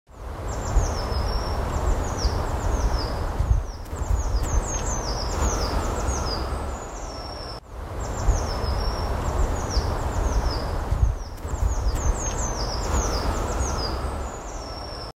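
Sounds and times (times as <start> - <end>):
birds singing: 0.3 - 15.1.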